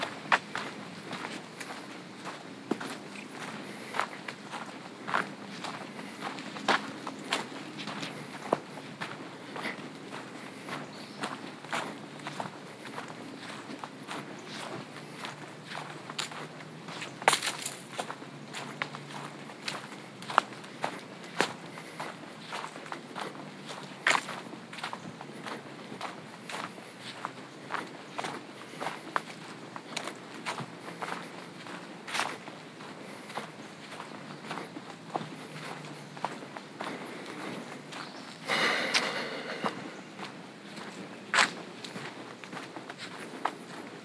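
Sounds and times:
hiking boots crunching and scuffing over gravel at a walking pace: 0.0s - 44.0s
birds singing in the trees: 0.4s - 43.9s.

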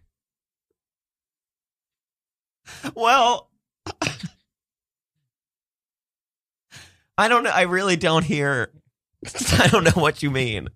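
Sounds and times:
speech: 2.8s - 3.5s, 7.2s - 10.7s
sneeze: 3.9s - 4.4s.

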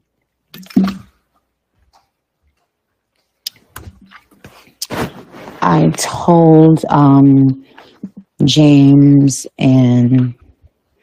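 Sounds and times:
person drinking water: 2.5s - 5.3s, 7.6s - 8.4s
speech: 5.8s - 7.8s, 8.4s - 10.4s.

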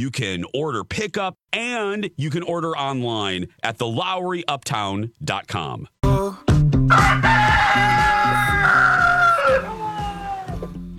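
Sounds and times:
speech: 0.0s - 6.0s, 6.9s - 7.5s
sick rooster crowing hoarsely: 6.9s - 10.7s.

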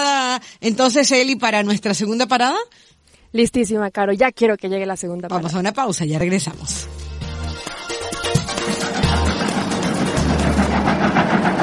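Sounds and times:
speech: 0.4s - 7.1s
moving locomotive train sound effect: 8.0s - 11.6s.

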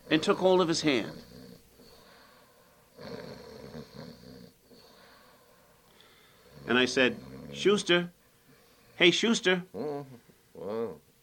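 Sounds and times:
man snoring while asleep on bed: 0.0s - 5.4s, 6.0s - 8.0s
speech: 0.2s - 1.3s, 6.7s - 8.2s, 9.0s - 11.0s
soft breathing: 1.2s - 3.0s, 4.6s - 6.7s, 8.2s - 9.0s.

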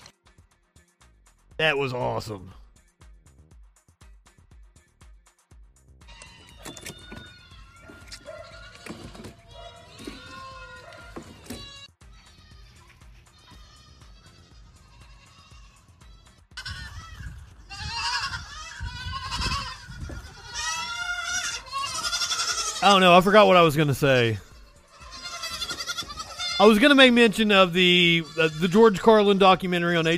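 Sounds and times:
speech: 1.6s - 2.6s, 22.9s - 24.5s, 26.6s - 30.1s
goats bleating: 6.1s - 30.1s.

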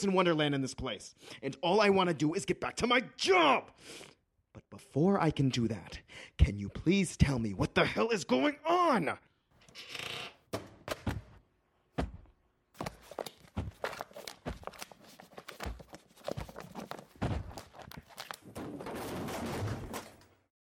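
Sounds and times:
speech: 0.0s - 11.0s
shelf tipping over: 17.1s - 20.5s
shelf contents clattering down with knocks, thuds and scraping crashes: 17.8s - 20.4s.

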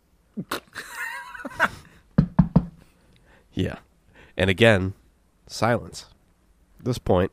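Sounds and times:
speech: 0.4s - 0.6s, 3.6s - 6.1s, 6.8s - 7.3s
laughter: 0.4s - 2.0s
officials knocking impatiently on a door: 2.2s - 2.8s.

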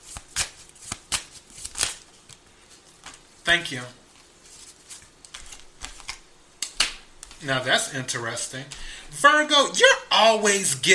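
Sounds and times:
playing cards being shuffled and drawn during a card reading: 0.0s - 3.2s, 4.1s - 7.4s
speech: 3.5s - 4.0s, 7.4s - 10.9s.

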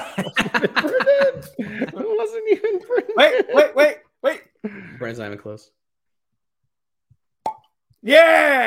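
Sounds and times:
laughter: 0.0s - 4.0s
speech: 0.2s - 4.4s, 5.0s - 5.8s, 8.0s - 8.6s
cork popping from bottle: 7.4s - 7.8s.

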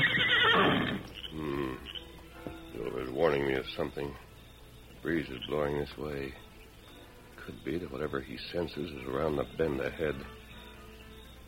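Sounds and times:
horse whinnying: 0.0s - 2.0s
speech: 3.3s - 4.3s, 5.0s - 6.4s, 7.4s - 10.4s.

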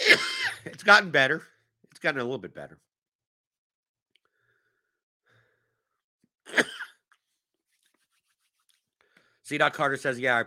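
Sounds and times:
single rough cough: 0.0s - 0.7s, 6.5s - 7.0s
speech: 0.1s - 2.9s, 6.5s - 6.7s, 9.5s - 10.4s.

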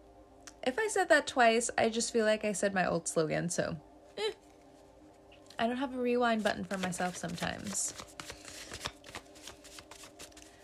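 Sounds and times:
speech: 0.7s - 4.3s, 5.6s - 8.2s
tarot cards being shuffled: 6.4s - 10.6s.

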